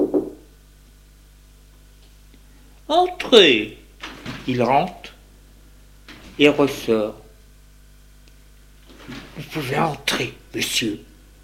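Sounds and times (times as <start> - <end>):
servant knocking on an upstairs salon door in a private mansion: 0.0 - 0.4
faint steady hum: 0.0 - 11.4
speech: 2.9 - 3.8, 4.5 - 5.1, 6.4 - 7.2, 9.1 - 11.1.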